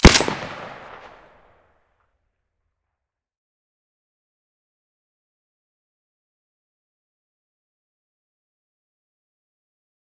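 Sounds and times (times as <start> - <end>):
Saiga gunshot with silencer: 0.0 - 1.3.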